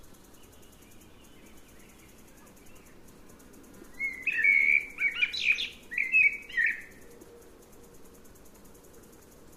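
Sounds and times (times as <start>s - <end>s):
Eurasian blackbird Turdus merula singing: 3.9s - 6.9s.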